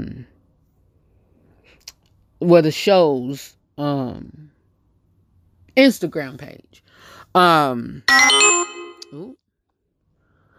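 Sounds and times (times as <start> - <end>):
speech: 2.4 - 4.5, 5.8 - 9.4
mobile phone ringtone with bright melodic bursts: 8.1 - 9.2.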